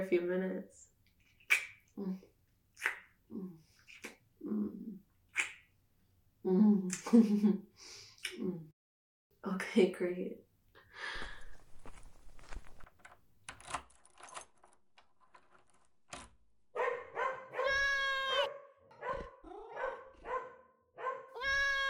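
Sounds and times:
speech: 0:00.0 - 0:00.9, 0:02.0 - 0:03.7, 0:04.4 - 0:05.0, 0:06.4 - 0:08.7, 0:09.4 - 0:10.4
footsteps: 0:11.0 - 0:12.9
dog yelping barks and whines: 0:16.8 - 0:21.8.

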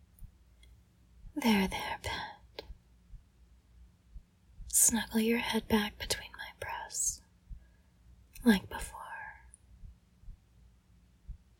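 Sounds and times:
faint hum: 0:00.0 - 0:11.5
heartbeat: 0:01.2 - 0:07.7, 0:08.6 - 0:10.6, 0:11.2 - 0:11.5
speech: 0:01.4 - 0:02.3, 0:04.9 - 0:06.2, 0:08.4 - 0:08.9.

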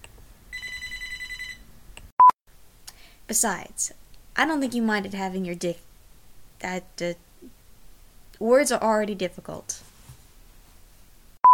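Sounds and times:
telephone ringing with an electronic trill: 0:00.5 - 0:01.7
speech: 0:03.3 - 0:05.9, 0:06.6 - 0:07.6, 0:08.4 - 0:09.9.

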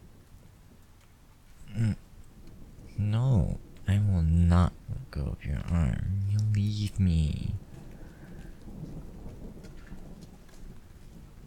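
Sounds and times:
steady rain pattering on a cold day: 0:00.0 - 0:11.4
deep rolling rumble of thunder: 0:02.3 - 0:11.4
speech: 0:07.0 - 0:07.7.

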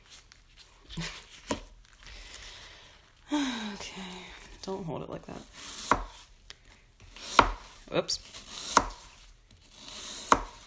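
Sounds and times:
speech: 0:04.7 - 0:05.7, 0:07.9 - 0:08.4
knife chopping food on a cutting board: 0:05.6 - 0:06.3, 0:07.0 - 0:10.6.

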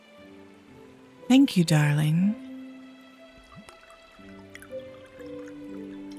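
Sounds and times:
speech: 0:01.3 - 0:02.4
soft drips: 0:03.1 - 0:06.1
wine pouring from a bottle into a glass: 0:03.2 - 0:06.1.

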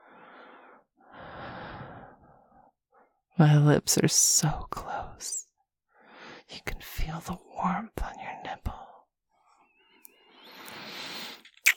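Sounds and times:
breathing close to the microphone: 0:00.0 - 0:03.2, 0:05.9 - 0:06.5, 0:09.3 - 0:11.5
speech: 0:03.4 - 0:05.4, 0:06.5 - 0:08.7.

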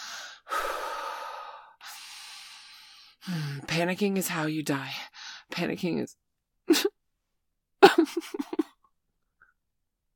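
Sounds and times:
deep slow breathing in a panicked moment: 0:00.0 - 0:03.6
speech: 0:03.2 - 0:07.0.

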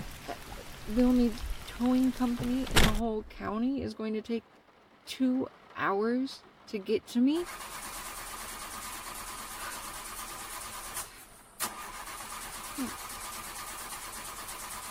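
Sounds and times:
rain: 0:00.0 - 0:14.8
speech: 0:00.9 - 0:07.8
car engine cranking but failing to start in the rain: 0:07.4 - 0:14.8.

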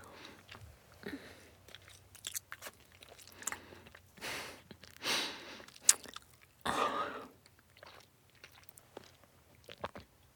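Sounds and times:
wet chewing sounds of chewing gum with soft smacks: 0:00.0 - 0:06.6, 0:07.4 - 0:10.2
crunchy bites: 0:01.8 - 0:03.7, 0:05.7 - 0:06.4.

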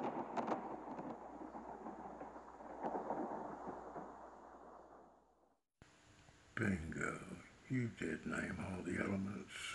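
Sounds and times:
steady rain in a thunderstorm: 0:00.0 - 0:05.2
low rolling thunder of a thunderstorm: 0:00.0 - 0:05.3
speech: 0:06.6 - 0:09.7.

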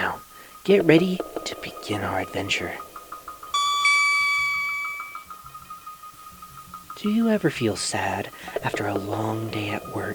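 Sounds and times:
faint repeating tone pattern: 0:00.0 - 0:10.1
speech: 0:00.6 - 0:02.9, 0:07.0 - 0:10.1
bright page-turn chime: 0:03.4 - 0:06.2.

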